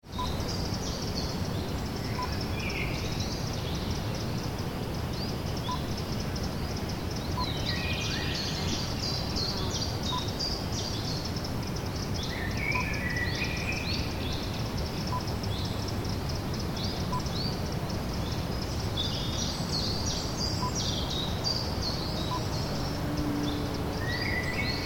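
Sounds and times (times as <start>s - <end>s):
conifer woodland ambience in spring: 0.0s - 24.8s.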